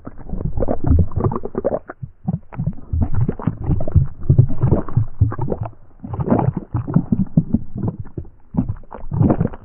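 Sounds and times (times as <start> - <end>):
voice making indigestion sounds: 0.0 - 9.6.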